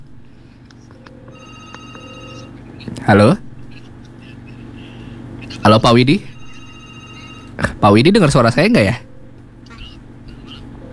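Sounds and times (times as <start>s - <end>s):
phone ringing with an incoming WhatsApp call: 1.2s - 2.8s, 6.2s - 8.0s
speech: 2.9s - 3.5s, 5.6s - 6.3s, 7.8s - 9.0s.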